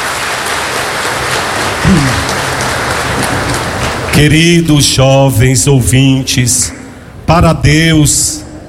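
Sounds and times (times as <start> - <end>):
audience applause: 0.0 - 4.4
speech: 4.2 - 8.4.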